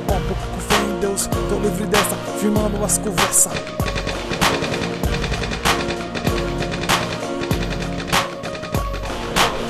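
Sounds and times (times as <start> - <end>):
droning musical backing: 0.0 - 9.6
speech: 1.0 - 4.0
machine gun burst: 3.4 - 9.6.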